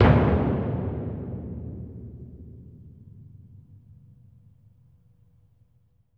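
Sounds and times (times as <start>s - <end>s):
concert bass drum: 0.0s - 3.6s.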